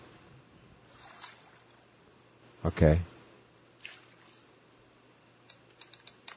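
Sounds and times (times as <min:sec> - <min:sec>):
faint steady hum: 0:00.0 - 0:06.3
speech: 0:02.6 - 0:03.1
typewriter keys clacking: 0:05.8 - 0:06.3.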